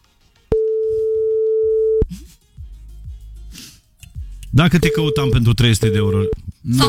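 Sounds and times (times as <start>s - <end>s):
phone ringback tone: 0.5s - 2.0s
speech: 4.6s - 6.8s.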